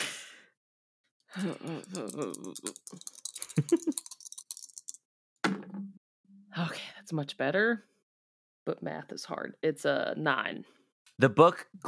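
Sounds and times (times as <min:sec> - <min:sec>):
speech: 0:01.3 - 0:04.1, 0:06.6 - 0:07.9, 0:08.7 - 0:11.8
short vocal sound: 0:01.4 - 0:03.8
dice rattling and clattering across a hard surface: 0:01.7 - 0:05.0.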